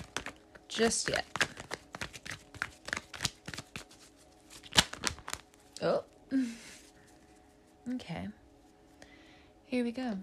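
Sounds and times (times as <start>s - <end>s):
tarot cards shuffled by hand: 0.0s - 5.8s
speech: 0.8s - 1.4s, 5.8s - 6.6s, 7.9s - 8.4s, 9.7s - 10.2s.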